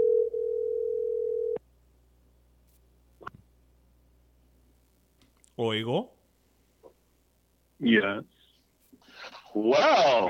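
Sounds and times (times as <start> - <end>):
telephone ringing tone while placing a call: 0.0 - 1.6
speech: 5.6 - 6.2, 7.8 - 8.3, 9.5 - 10.2.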